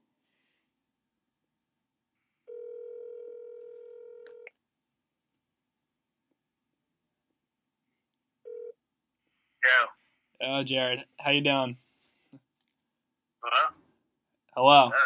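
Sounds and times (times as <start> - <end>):
telephone tones as a call is placed: 2.5 - 4.5, 8.5 - 8.7
speech: 9.7 - 11.8, 14.6 - 15.0.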